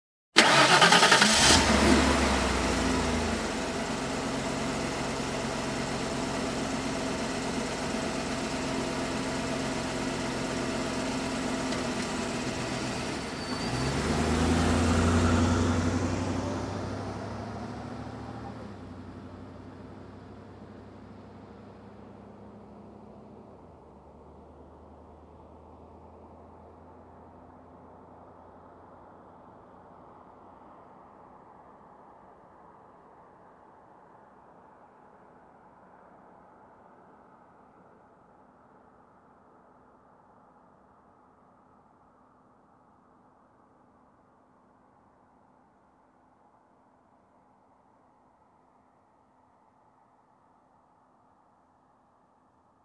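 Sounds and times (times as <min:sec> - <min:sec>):
car engine ignition: 0:00.4 - 0:28.6.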